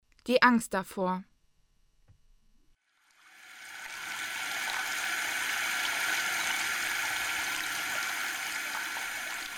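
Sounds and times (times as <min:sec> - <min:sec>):
speech: 0:00.2 - 0:01.3
cold water gushing from a tap into cupped hands: 0:03.1 - 0:09.5.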